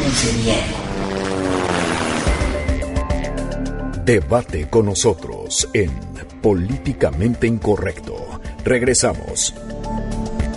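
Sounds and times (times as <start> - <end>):
helicopter rotor whirring with droning engine: 0.0 - 3.5
speech: 0.3 - 1.5, 4.0 - 10.1.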